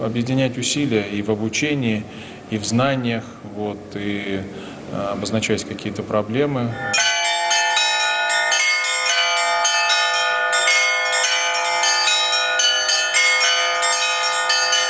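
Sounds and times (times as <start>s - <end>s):
speech: 0.0s - 7.1s
church bells pealing: 6.5s - 14.8s.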